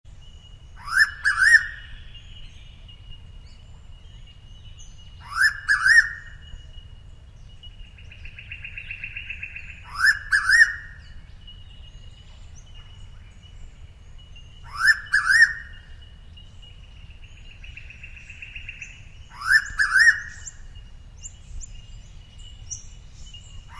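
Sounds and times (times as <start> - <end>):
noisy pitta Pitta versicolor calling: 0.1 - 23.7.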